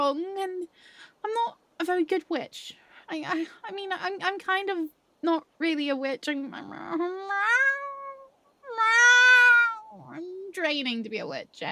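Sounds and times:
speech: 0:00.0 - 0:07.8, 0:10.0 - 0:11.6
cat meowing: 0:07.2 - 0:10.4.

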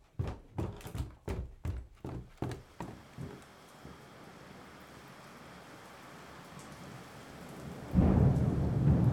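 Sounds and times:
rain pattering: 0:02.6 - 0:09.1
deep rumble of thunder: 0:07.6 - 0:09.1.

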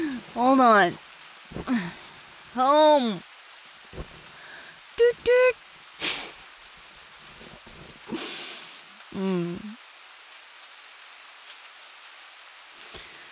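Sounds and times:
burst of noise: 0:00.0 - 0:03.2, 0:03.8 - 0:08.8
person groaning: 0:00.0 - 0:03.2, 0:09.2 - 0:09.8
rain pattering on a hard surface: 0:00.0 - 0:13.3
speech: 0:00.4 - 0:02.0, 0:02.6 - 0:03.3, 0:03.9 - 0:04.2, 0:05.0 - 0:06.3, 0:09.2 - 0:09.8.

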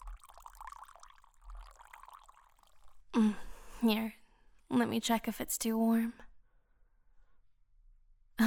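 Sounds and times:
hot drink pouring from a thermos into a cup: 0:00.0 - 0:03.1
speech: 0:03.2 - 0:06.2.

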